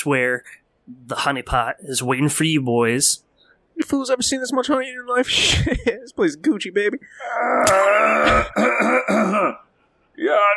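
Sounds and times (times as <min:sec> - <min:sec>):
speech: 0:00.0 - 0:10.5
throat clearing: 0:07.6 - 0:09.6.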